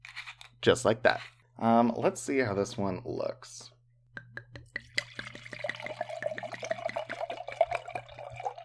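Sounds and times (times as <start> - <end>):
speech: 0.6 - 3.7
red wine pouring from a screw-cap bottle into a glass: 4.8 - 8.6.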